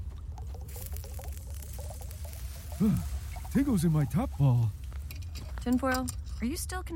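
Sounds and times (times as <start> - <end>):
liquid glugging and gurgling as poured: 0.0 - 5.7
low constant rumble: 0.0 - 6.9
speech: 2.8 - 4.8, 5.6 - 6.9.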